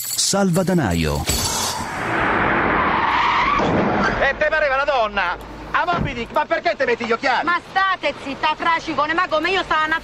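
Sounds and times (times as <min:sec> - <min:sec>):
speech: 0:00.3 - 0:01.4, 0:03.6 - 0:10.0
car tires skidding as a car brakes hard for a traffic light: 0:01.7 - 0:04.4.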